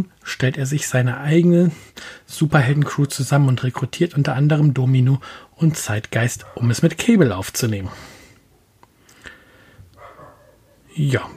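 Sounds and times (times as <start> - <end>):
speech: 0.0 - 8.2, 11.0 - 11.3
background hiss: 0.0 - 11.3
dog barking in the background: 6.3 - 6.9, 10.0 - 11.0.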